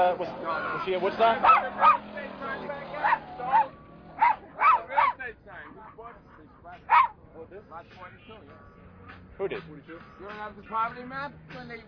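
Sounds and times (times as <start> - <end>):
speech: 0.0 - 3.8, 5.5 - 11.8
dog barking: 1.4 - 2.1, 2.9 - 6.0, 6.9 - 7.2.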